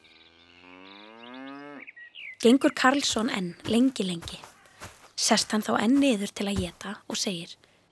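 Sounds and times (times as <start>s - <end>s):
cow mooing in the distance: 0.0s - 1.9s
speech: 2.4s - 4.5s, 5.2s - 7.6s.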